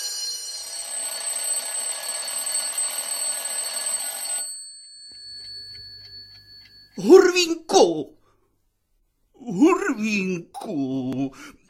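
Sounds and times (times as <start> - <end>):
school bell ringing: 0.0 - 7.5
speech: 7.0 - 8.2, 10.0 - 11.6.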